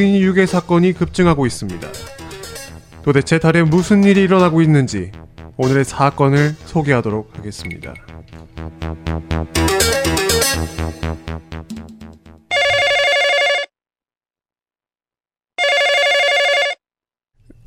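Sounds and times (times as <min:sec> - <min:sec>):
speech: 0:00.0 - 0:02.2, 0:03.0 - 0:12.9
dramatic musical sting with pulsing tones: 0:01.7 - 0:12.5
electronic telephone ringing: 0:12.5 - 0:13.7, 0:15.6 - 0:16.8.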